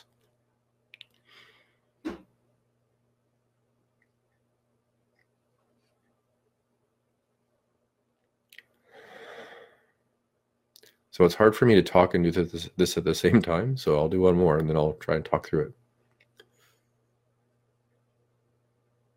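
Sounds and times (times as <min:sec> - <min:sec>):
slow deliberate breathing with long inhales and short exhales: 0:01.2 - 0:01.9, 0:08.8 - 0:10.0
speech: 0:11.2 - 0:15.8.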